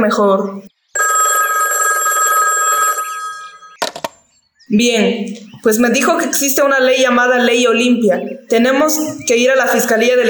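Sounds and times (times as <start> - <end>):
speech: 0.0 - 0.7, 4.7 - 10.2
telephone bell ringing on an outgoing call: 1.0 - 3.8
sharp clicks: 3.8 - 4.3.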